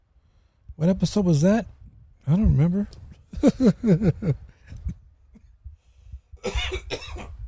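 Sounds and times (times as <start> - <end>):
speech: 0.8 - 4.4
laughter: 3.4 - 4.9
light throat clearing: 6.4 - 7.4
person coughing: 6.4 - 7.4.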